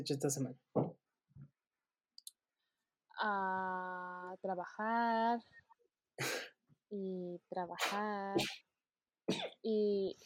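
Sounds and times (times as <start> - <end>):
speech: 0.0 - 0.7, 3.2 - 5.6, 6.2 - 8.6, 9.3 - 10.2
harsh coughing: 9.3 - 9.6.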